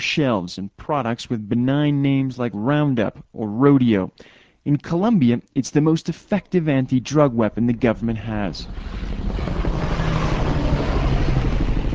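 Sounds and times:
speech: 0:00.0 - 0:09.6
T-65 twin-engine crop-spraying airplane roaring overhead in Colombia: 0:07.5 - 0:11.9.

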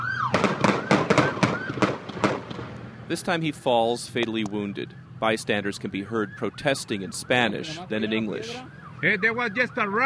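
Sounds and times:
gunshots fired by police at a man in a street: 0:00.3 - 0:02.8
speech: 0:03.1 - 0:10.0.

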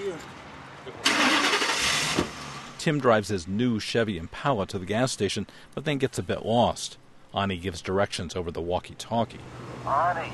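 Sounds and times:
speech: 0:00.2 - 0:01.2, 0:02.8 - 0:10.3
U-Haul truck engine starting on a bitterly cold morning: 0:01.0 - 0:02.8.

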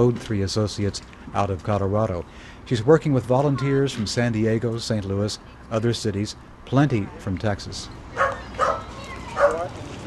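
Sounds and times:
speech: 0:00.0 - 0:08.0
pit bulls and other dogs yelping barks coming out of a truck: 0:08.1 - 0:09.8.

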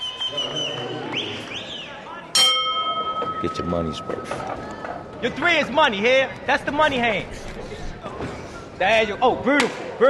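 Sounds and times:
noisy crowd at a boxing bout: 0:00.0 - 0:10.0
boxing ring bell clanging at a boxing bout: 0:02.4 - 0:04.1
speech: 0:03.4 - 0:07.7, 0:08.8 - 0:10.0.

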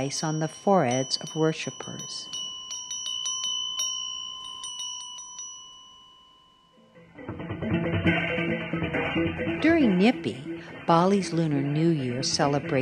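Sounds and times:
speech: 0:00.0 - 0:02.4, 0:10.0 - 0:12.7
small high-pitched temple bell rung by a priest: 0:00.0 - 0:07.1
louder dense clanging music: 0:07.1 - 0:10.7.

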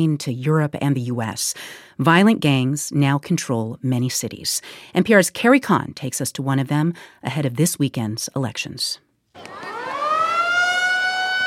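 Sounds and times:
speech: 0:00.0 - 0:09.6
school siren sounding the end of recess in Durán, Ecuador: 0:09.4 - 0:11.4.

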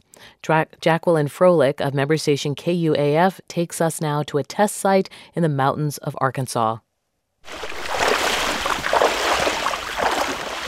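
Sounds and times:
speech: 0:00.4 - 0:06.8
rushing water of a fast-flowing creek: 0:07.4 - 0:10.6.

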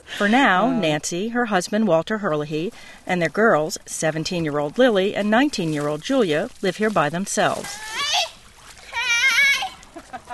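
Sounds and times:
speech: 0:00.2 - 0:08.3
girls splashing in a backyard swimming pool: 0:02.7 - 0:10.3
child's high voice: 0:07.8 - 0:09.8.

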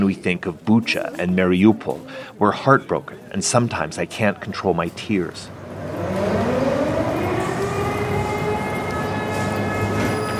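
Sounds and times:
speech: 0:00.0 - 0:06.2
air raid siren wailing: 0:05.5 - 0:10.3.

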